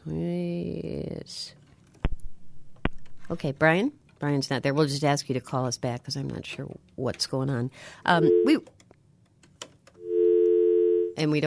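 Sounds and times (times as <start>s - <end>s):
speech: 3.3s - 8.8s, 11.2s - 11.4s
telephone busy signal on a failed call-in line: 8.2s - 8.6s, 10.0s - 11.1s.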